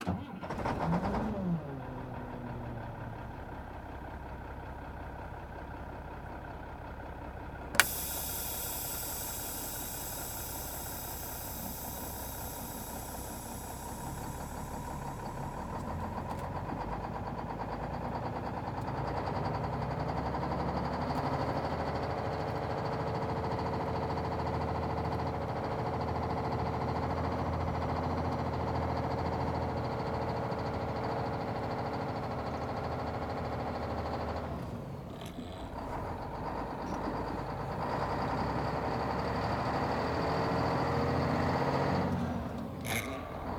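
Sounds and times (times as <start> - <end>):
semi truck engine: 0.0 - 43.5.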